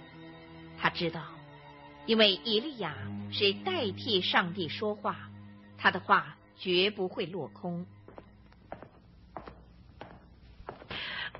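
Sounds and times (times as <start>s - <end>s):
speech: 0.9s - 1.4s, 2.1s - 8.0s
footsteps approaching: 8.0s - 11.3s.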